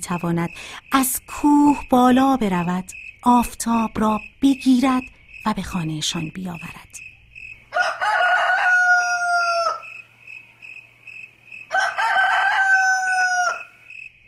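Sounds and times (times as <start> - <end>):
speech: 0.0 - 7.1
insects chirping: 0.0 - 14.2
rooster crowing in the early morning: 7.6 - 10.1, 11.6 - 13.8.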